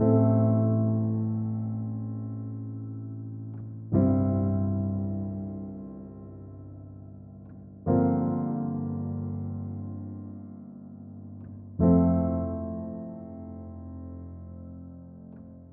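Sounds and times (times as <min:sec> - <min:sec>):
cinematic drama piano chord progressions in F major and D minor: 0:00.0 - 0:15.7.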